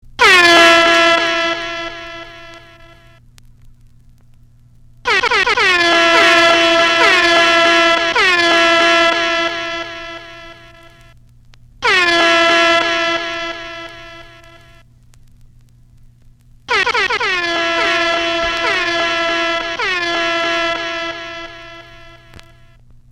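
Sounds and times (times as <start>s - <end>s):
air horn: 0.2s - 3.2s, 5.0s - 11.1s, 11.8s - 14.8s, 16.7s - 22.8s.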